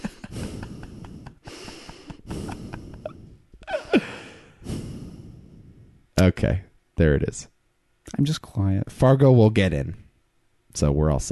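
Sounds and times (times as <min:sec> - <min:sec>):
heavy breathing into the microphone: 0:00.3 - 0:06.0
speech: 0:06.2 - 0:07.5, 0:08.1 - 0:10.0, 0:10.8 - 0:11.3.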